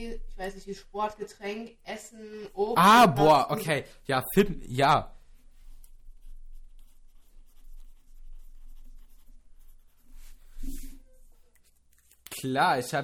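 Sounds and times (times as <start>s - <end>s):
speech: 0.0s - 5.2s, 12.4s - 13.0s
felt-tip pen drawing lines on a sheet of paper: 5.3s - 12.1s.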